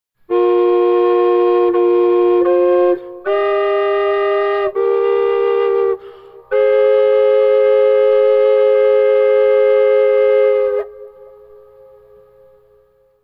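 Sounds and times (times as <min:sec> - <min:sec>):
double flute: 0:00.3 - 0:12.6.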